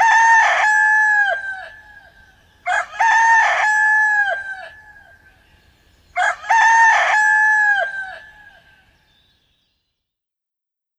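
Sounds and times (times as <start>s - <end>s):
rooster crowing: 0.0s - 5.2s, 6.2s - 8.8s.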